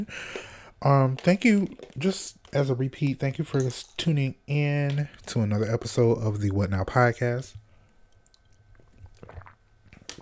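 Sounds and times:
speech: 0.0s - 7.6s
sipping and swallowing cold water: 8.1s - 10.2s
slurp: 8.8s - 10.2s.

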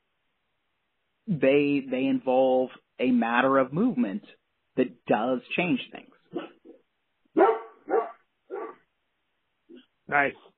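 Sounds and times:
speech: 1.3s - 6.5s, 10.1s - 10.5s
dog barking: 6.3s - 6.8s, 7.4s - 8.8s.

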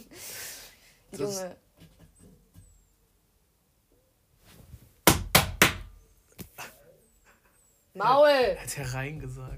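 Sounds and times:
speech: 1.1s - 1.7s, 8.0s - 9.5s
hammer blows on a house wall making holes: 5.0s - 5.9s.

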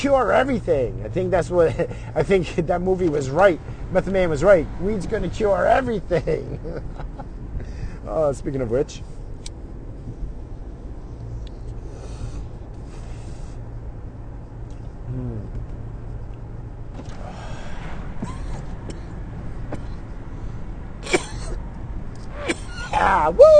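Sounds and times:
speech: 0.0s - 7.1s, 8.0s - 9.1s, 23.0s - 23.5s
steady low road rumble from inside a moving car: 0.0s - 23.5s
person coughing hard in a fit: 21.0s - 21.6s, 22.4s - 23.0s.

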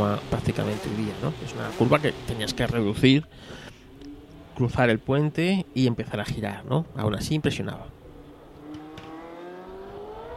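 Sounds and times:
race car engine accelerating in first gear downhill: 0.0s - 3.1s, 8.2s - 10.3s
speech: 0.0s - 3.7s, 4.6s - 8.0s.

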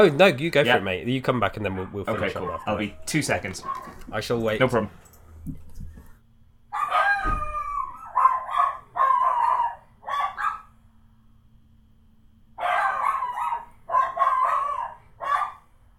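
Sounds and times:
speech: 0.0s - 5.6s
dogs barking: 0.6s - 4.1s, 6.7s - 10.8s, 12.6s - 15.7s.

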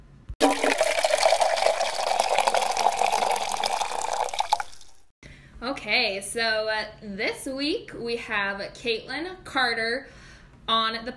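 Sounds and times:
cocktail being poured into a glass: 0.4s - 5.1s
speech: 5.8s - 11.1s.

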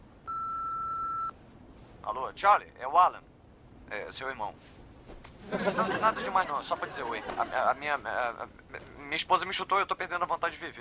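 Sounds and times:
answering machine beep: 0.3s - 1.3s
speech: 2.1s - 3.3s, 3.9s - 10.7s
laughter: 5.4s - 8.1s.

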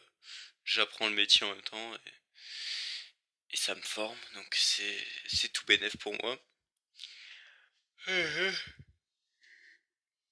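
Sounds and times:
speech: 0.7s - 2.7s, 3.5s - 7.1s, 8.0s - 8.9s
person yawning: 8.0s - 8.8s.

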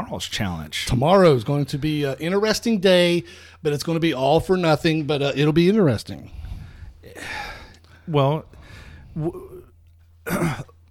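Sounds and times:
speech: 0.1s - 6.4s, 7.0s - 7.5s, 8.1s - 9.6s, 10.3s - 10.6s
person clearing throat: 9.2s - 10.8s.

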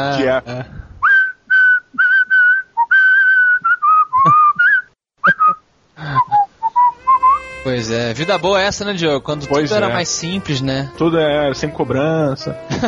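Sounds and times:
speech: 0.0s - 0.9s, 7.6s - 12.8s
person whistling a cheerful bouncy melody: 1.0s - 7.5s
laughter: 12.6s - 12.8s.

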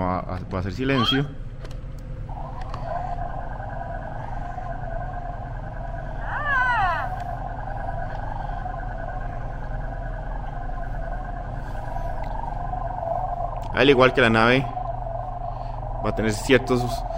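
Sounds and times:
speech: 0.0s - 1.8s, 13.8s - 14.8s, 16.1s - 17.1s
steady low mechanical hum: 0.0s - 17.1s
animatronic toy creature warbling cry sliding downward in pitch: 0.9s - 1.3s, 6.2s - 7.2s.

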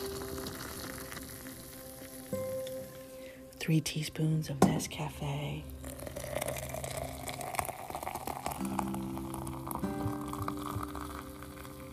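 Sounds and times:
hot water pouring from a little red teapot into a cup: 0.0s - 3.3s, 5.7s - 11.9s
speech: 3.7s - 5.8s.

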